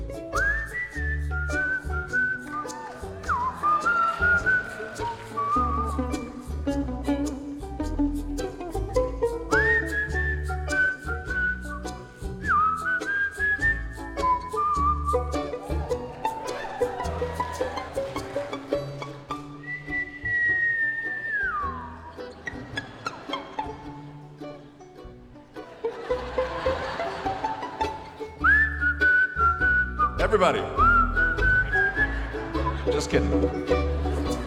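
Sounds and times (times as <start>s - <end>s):
person whistling a tune: 0.2s - 7.5s, 9.3s - 17.9s, 19.4s - 22.6s, 28.4s - 34.4s
laughter: 1.3s - 9.8s, 13.8s - 29.5s, 30.4s - 34.4s
speech: 30.4s - 30.7s.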